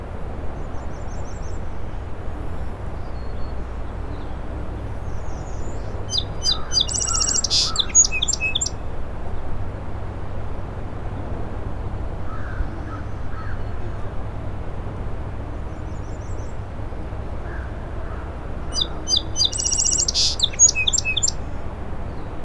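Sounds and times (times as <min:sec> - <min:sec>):
steady low rumble of wind or surf at incoming tide: 0:00.0 - 0:06.7, 0:08.8 - 0:19.0
song sparrow singing in shrub on causeway: 0:03.0 - 0:08.8, 0:15.6 - 0:16.7, 0:18.1 - 0:22.4.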